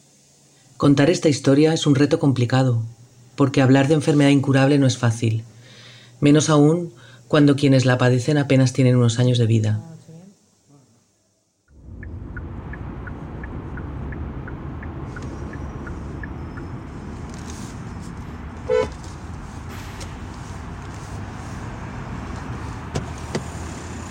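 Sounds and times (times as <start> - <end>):
speech: 0.8 - 5.5, 6.2 - 9.9
faint rhythmic ticking: 11.7 - 17.4
car engine rumbling in very cold weather: 11.7 - 24.0
short car horn honk: 18.6 - 19.0.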